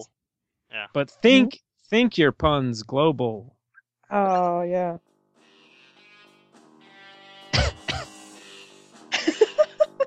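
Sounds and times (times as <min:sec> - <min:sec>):
speech: 0:00.0 - 0:05.1
quick voiced bursts: 0:00.8 - 0:01.6
small light coughs: 0:07.5 - 0:08.1
laughter: 0:09.1 - 0:10.0.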